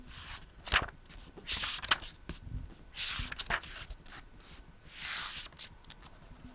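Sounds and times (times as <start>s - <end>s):
book pages turning: 0.2s - 2.2s, 3.0s - 4.2s, 5.0s - 6.1s.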